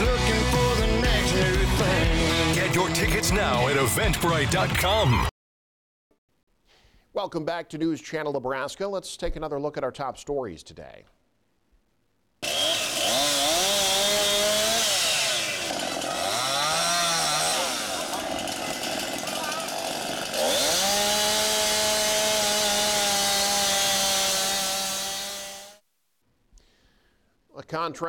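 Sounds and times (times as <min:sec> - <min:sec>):
chainsaws cutting trees at full throttle in Kearney Nebraska: 0:00.0 - 0:05.0, 0:12.4 - 0:25.8
speech: 0:02.8 - 0:05.3, 0:07.2 - 0:11.2, 0:27.7 - 0:28.0.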